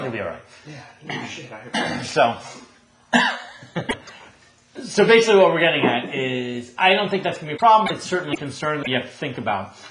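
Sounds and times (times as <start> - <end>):
speech: 0.1 - 9.9
person coughing: 1.1 - 2.2, 3.1 - 4.2.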